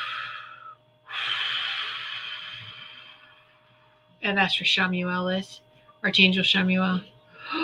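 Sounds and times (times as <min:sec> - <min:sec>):
deep breathing during a guided meditation: 0:00.0 - 0:04.0
faint steady hum: 0:00.0 - 0:07.6
speech: 0:04.2 - 0:07.6.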